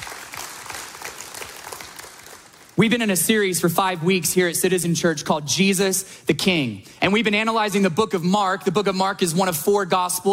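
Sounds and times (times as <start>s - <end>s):
church congregation applauding during a sermon: 0.0s - 2.8s
speech: 2.8s - 10.3s.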